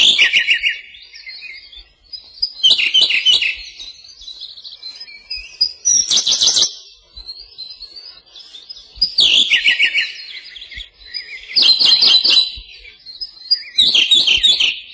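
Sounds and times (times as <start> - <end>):
Siberian blue robin singing on a branch in the Ussuri taiga: 0.0 - 14.9.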